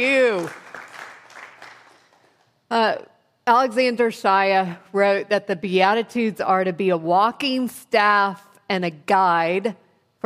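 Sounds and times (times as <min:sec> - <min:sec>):
speech: 0:00.0 - 0:00.6, 0:02.7 - 0:10.2
gathered crowd applauding: 0:00.0 - 0:02.4.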